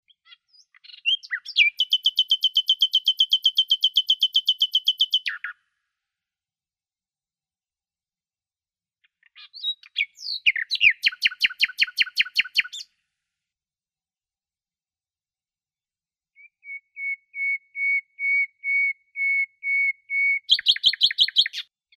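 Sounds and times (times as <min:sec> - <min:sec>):
Luscinia megarhynchos singing: 0:00.0 - 0:05.6, 0:09.0 - 0:13.0, 0:16.4 - 0:21.9.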